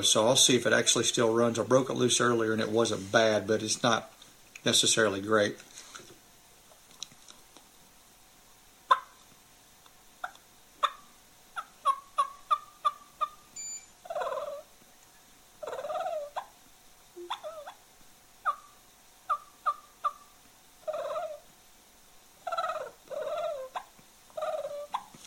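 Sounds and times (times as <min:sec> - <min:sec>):
speech: 0:00.0 - 0:05.7
hand-operated cluck and purr turkey call imitating a hen: 0:08.8 - 0:09.3, 0:10.2 - 0:16.6, 0:17.2 - 0:21.5, 0:22.4 - 0:25.2.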